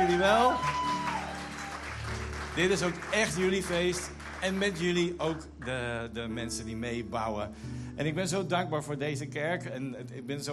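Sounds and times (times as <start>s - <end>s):
audience applause in a church: 0.0s - 5.6s
speech: 0.2s - 0.9s, 2.6s - 10.5s.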